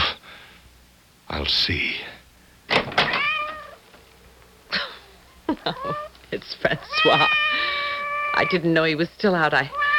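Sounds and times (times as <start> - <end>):
speech: 1.4 - 2.1, 5.7 - 7.5, 8.4 - 9.8
cat meowing at the front door: 3.0 - 3.9, 5.1 - 6.1, 6.8 - 8.7, 9.7 - 9.9.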